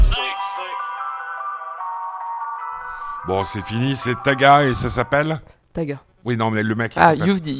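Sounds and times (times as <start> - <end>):
loud mobile phone ringtone melody: 0.2 - 5.3
speech: 3.3 - 7.5.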